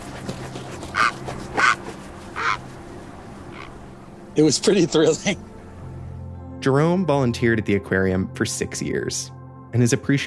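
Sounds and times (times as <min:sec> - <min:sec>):
great blue heron squawking: 0:00.8 - 0:02.6, 0:03.5 - 0:03.8
speech: 0:04.4 - 0:05.5, 0:06.6 - 0:10.2.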